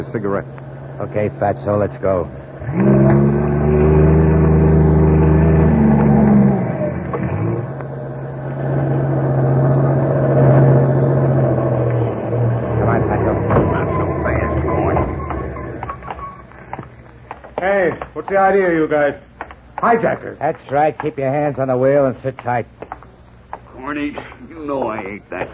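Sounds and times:
speech: 0:00.0 - 0:03.4, 0:18.4 - 0:19.2, 0:19.8 - 0:22.8, 0:24.0 - 0:25.5
heavy trailer truck engine roaring uphill on a steep highway at night: 0:00.0 - 0:18.2.

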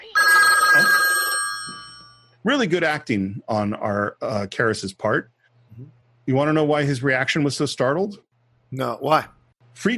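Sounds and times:
loud telephone bell ringing: 0:00.1 - 0:02.3
speech: 0:02.4 - 0:09.9.

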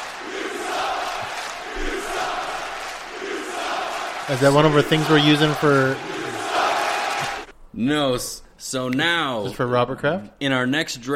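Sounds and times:
large crowd cheering: 0:00.0 - 0:07.5
speech: 0:04.3 - 0:06.1, 0:07.8 - 0:11.1.

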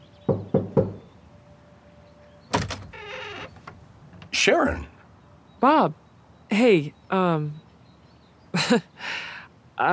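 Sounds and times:
visitor knocking on a wooden home door: 0:00.3 - 0:01.1
door clunk: 0:02.5 - 0:04.4
speech: 0:04.4 - 0:04.9, 0:05.6 - 0:07.6, 0:08.5 - 0:09.2, 0:09.8 - 0:09.9.

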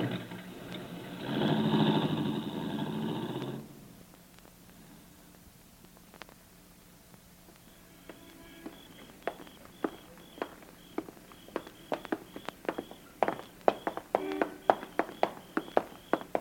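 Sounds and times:
faint constant hum: 0:00.0 - 0:16.3
footsteps walking briskly on a hard surface: 0:07.5 - 0:16.3.

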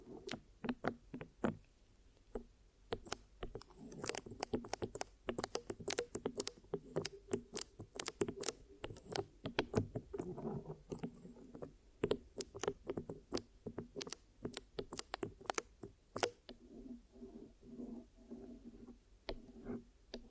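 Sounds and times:
dry tapping and clicking from an ear massage and cleaning: 0:00.3 - 0:01.6, 0:02.3 - 0:16.6.

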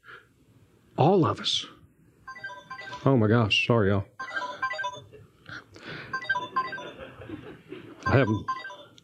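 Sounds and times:
speech: 0:01.0 - 0:01.8, 0:03.0 - 0:04.1, 0:08.2 - 0:08.6
phone electronic ringtone in a studio: 0:02.3 - 0:03.2, 0:04.2 - 0:05.1, 0:06.1 - 0:07.1, 0:08.1 - 0:09.0.

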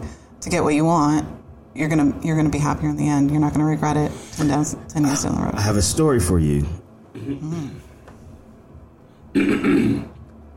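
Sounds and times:
speech: 0:00.4 - 0:07.9, 0:09.3 - 0:10.1
person clearing throat: 0:05.0 - 0:05.4, 0:07.1 - 0:07.8, 0:09.3 - 0:10.2.

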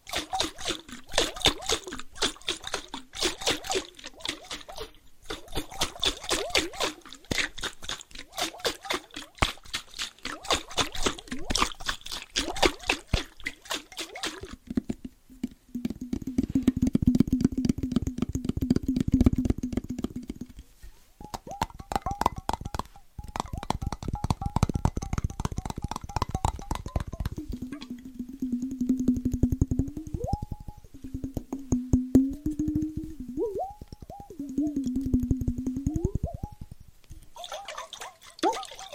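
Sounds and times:
liquid sloshing in water bottles: 0:00.0 - 0:20.7, 0:21.3 - 0:36.6, 0:37.2 - 0:38.9
water bottles shaken and tapped: 0:00.0 - 0:38.9
brief hollow tones: 0:14.6 - 0:20.6, 0:21.2 - 0:37.0.

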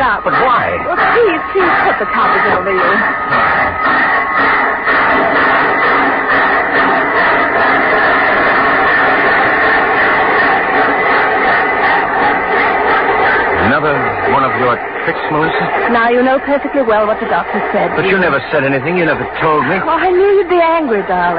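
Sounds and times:
laughter: 0:00.0 - 0:21.3
train rumbling and rattling on rails heard from inside a carriage: 0:00.0 - 0:21.3
speech: 0:00.1 - 0:05.4, 0:14.6 - 0:21.3.

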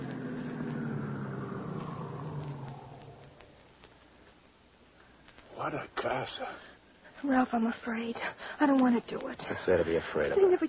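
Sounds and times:
car engine humming as the car slows and stops: 0:00.0 - 0:03.8
speech: 0:05.6 - 0:10.6.

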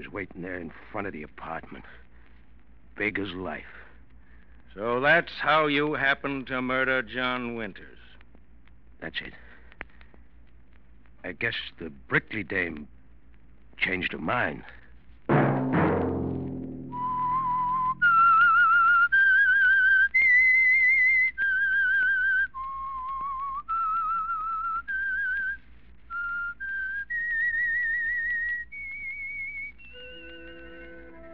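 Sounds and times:
speech: 0:00.0 - 0:02.1, 0:03.0 - 0:03.8, 0:04.8 - 0:08.0, 0:09.0 - 0:09.4, 0:11.2 - 0:13.0, 0:13.8 - 0:15.4
brief low musical hit: 0:15.3 - 0:18.3
lone whistled theme melody of a weekly program: 0:16.9 - 0:31.3.

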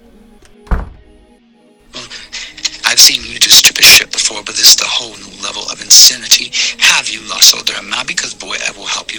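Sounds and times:
office door slamming shut: 0:00.6 - 0:01.2
speech: 0:03.0 - 0:09.1.

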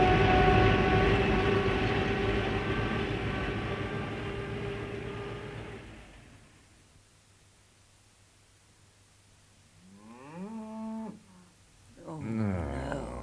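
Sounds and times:
faint steady hiss: 0:00.0 - 0:13.2
cows mooing at milking time: 0:09.8 - 0:11.6.

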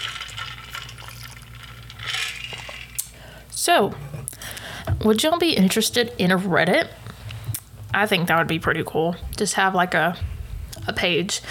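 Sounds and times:
water pouring into a container: 0:00.0 - 0:02.3
low hum: 0:00.0 - 0:11.4
speech: 0:03.6 - 0:04.0, 0:05.0 - 0:07.0, 0:08.0 - 0:10.3, 0:10.9 - 0:11.4.

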